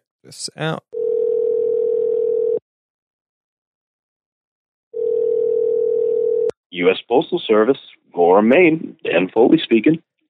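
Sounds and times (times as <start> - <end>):
speech: 0.3 - 1.0, 6.7 - 10.1
telephone dial tone while placing a call: 1.0 - 2.6, 5.0 - 6.5.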